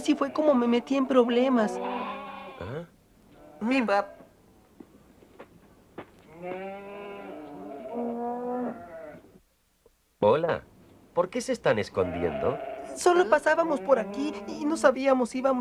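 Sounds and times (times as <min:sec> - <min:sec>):
speech: 0:00.0 - 0:02.1, 0:03.6 - 0:04.2, 0:06.4 - 0:07.0, 0:10.2 - 0:15.5
cow mooing while being milked: 0:00.0 - 0:02.8, 0:06.3 - 0:09.2, 0:12.0 - 0:14.9.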